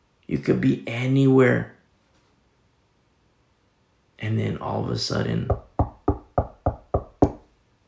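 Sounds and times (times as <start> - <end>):
speech: 0.3 - 1.8, 4.2 - 5.6
hard knocking on a wooden door: 5.5 - 7.4.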